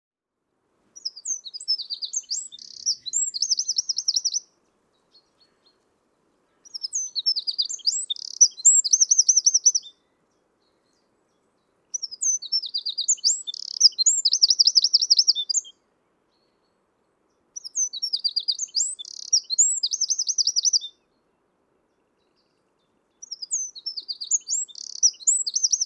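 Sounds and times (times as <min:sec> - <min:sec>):
Eurasian wren Troglodytes troglodytes singing rapid piercing notes and trills: 0:01.0 - 0:05.8, 0:06.6 - 0:10.1, 0:11.9 - 0:15.8, 0:17.6 - 0:21.0, 0:23.2 - 0:25.8.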